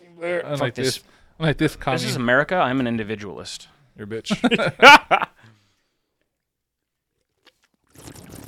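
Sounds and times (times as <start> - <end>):
speech: 0.2 - 5.4
laughter: 4.3 - 5.4
soft gulps: 6.1 - 8.4
drinking Four Loko from a can: 7.1 - 8.4.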